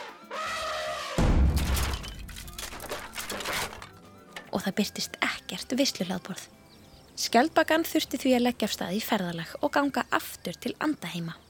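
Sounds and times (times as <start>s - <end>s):
drum breaking with a scattered rattling crash: 1.2s - 3.9s
speech: 4.6s - 6.6s, 7.2s - 11.4s.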